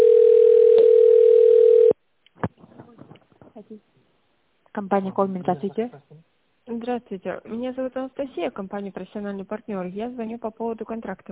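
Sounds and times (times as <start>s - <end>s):
steady telephone tone while a call is being connected: 0.0s - 2.0s
speech: 4.8s - 11.3s.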